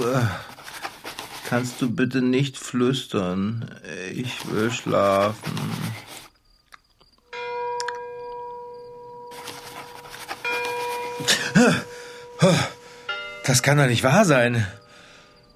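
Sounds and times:
speech: 0:00.0 - 0:00.5, 0:01.5 - 0:05.8, 0:11.6 - 0:12.8, 0:13.5 - 0:14.8
church bells ringing at night in the countryside: 0:07.4 - 0:09.4, 0:10.0 - 0:15.5.

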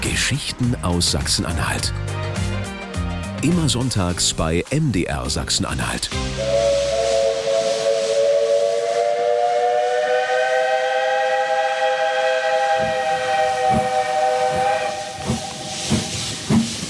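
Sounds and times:
speech: 0:00.1 - 0:02.3, 0:03.4 - 0:06.9
steam locomotive whistle on the Nordhausen to Wernigerode railway in Germany: 0:06.3 - 0:16.5.

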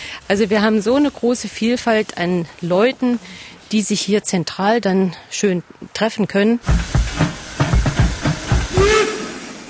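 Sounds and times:
speech: 0:00.3 - 0:07.0
steam train chuffing climbing a steep railway line to the Rennsteig in Germany: 0:06.6 - 0:09.6
rising whistle-like tone: 0:08.7 - 0:09.6.

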